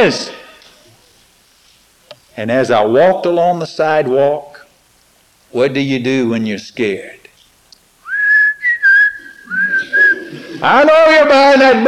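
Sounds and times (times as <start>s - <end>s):
speech: 0.0s - 0.4s, 2.4s - 4.5s, 5.5s - 7.2s, 10.6s - 11.8s
soft rustles: 0.7s - 2.4s
person whistling a steady wavering tune: 8.0s - 10.3s.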